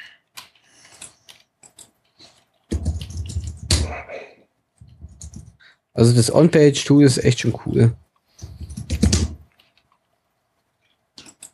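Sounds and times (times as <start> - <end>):
loud rapid computer keyboard typing: 0.4 - 3.9, 4.8 - 5.6, 8.4 - 9.8, 11.2 - 11.5
speech: 6.0 - 8.0.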